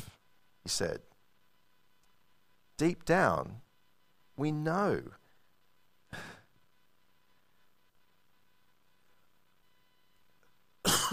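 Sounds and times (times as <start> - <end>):
quiet hum: 0.0 - 11.1
speech: 0.7 - 1.1, 2.8 - 3.6, 4.4 - 5.2
person coughing: 10.8 - 11.1.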